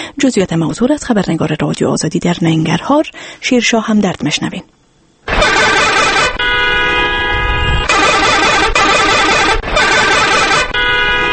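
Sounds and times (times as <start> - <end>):
speech: 0.0 - 4.8
vehicle horns blaring in city traffic: 5.3 - 11.3.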